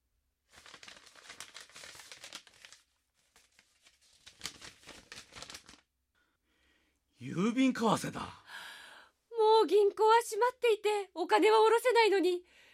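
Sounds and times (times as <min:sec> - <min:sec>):
envelope holding a letter from a church being torn open: 0:00.5 - 0:05.9
letter paper crinkling and rustling: 0:00.5 - 0:05.9
speech: 0:07.2 - 0:08.4, 0:09.7 - 0:12.5.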